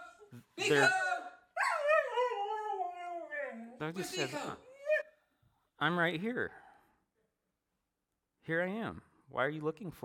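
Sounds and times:
dog howling: 0:00.0 - 0:03.8
speech: 0:00.3 - 0:01.1, 0:03.8 - 0:04.7, 0:05.8 - 0:06.6, 0:08.5 - 0:10.0.

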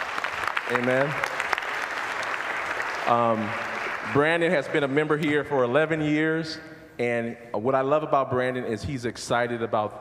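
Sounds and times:
large church gathering applauding a preacher: 0:00.0 - 0:04.9
speech: 0:00.7 - 0:01.3, 0:03.0 - 0:10.0.

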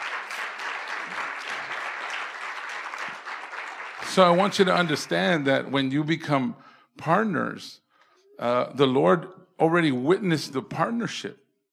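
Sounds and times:
audience applauding: 0:00.0 - 0:05.5
speech: 0:04.2 - 0:07.8, 0:08.4 - 0:11.4.

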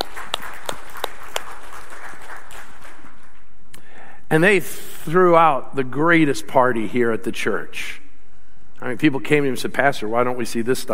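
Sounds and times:
crowd applauding: 0:00.0 - 0:03.4
speech: 0:04.3 - 0:08.0, 0:08.8 - 0:10.9.

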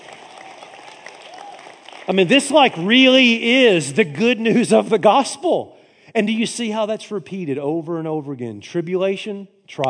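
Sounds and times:
light polite golf clap from audience: 0:00.0 - 0:03.3
speech: 0:02.1 - 0:09.8.

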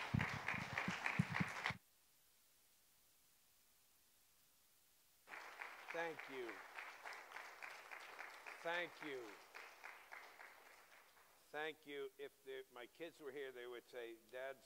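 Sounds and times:
large church audience clapping for a guest speaker: 0:00.0 - 0:01.8, 0:05.3 - 0:11.4
scattered voices calling out and cheering: 0:00.0 - 0:01.8, 0:05.3 - 0:10.8
speech: 0:06.0 - 0:06.7, 0:08.6 - 0:09.5, 0:11.5 - 0:14.6.

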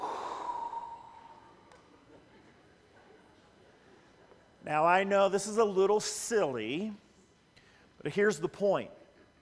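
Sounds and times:
children breathing into their parents' ears: 0:00.0 - 0:01.7
speech: 0:04.7 - 0:07.0, 0:08.0 - 0:09.0.

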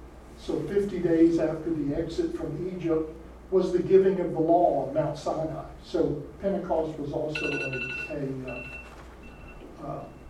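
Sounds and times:
speech: 0:00.4 - 0:08.8, 0:09.8 - 0:10.1
phone alarm ringing: 0:07.4 - 0:10.2.

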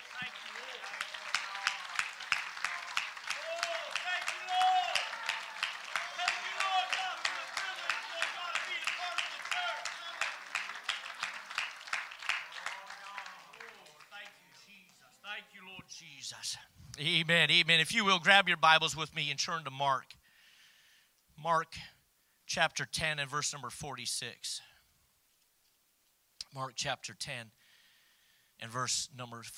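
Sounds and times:
voices calling out over the applause: 0:00.0 - 0:11.6
audience clapping in praise: 0:00.0 - 0:15.0
speech: 0:16.3 - 0:20.1, 0:21.4 - 0:21.9, 0:22.5 - 0:24.7, 0:26.6 - 0:27.6, 0:28.6 - 0:29.5.

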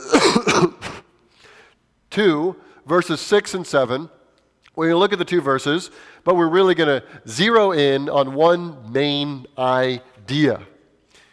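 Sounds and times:
throat clearing: 0:00.0 - 0:01.1
coughing: 0:00.0 - 0:01.2
speech: 0:00.6 - 0:00.8, 0:02.2 - 0:04.2, 0:04.8 - 0:10.7.

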